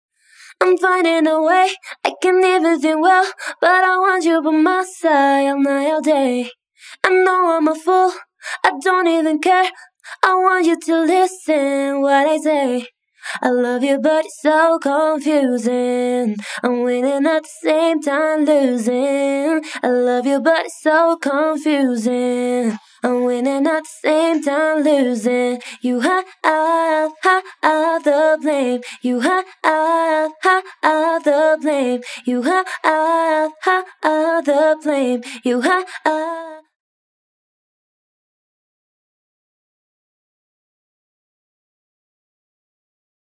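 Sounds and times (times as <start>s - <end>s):
de-reverberated vocal: 0.6s - 36.6s.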